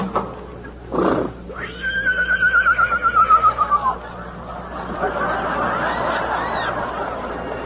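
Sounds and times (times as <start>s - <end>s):
horse snorting: 0.9s - 1.5s
lame horse whinnying in a bitter storm: 0.9s - 4.0s
laughter: 2.6s - 7.6s.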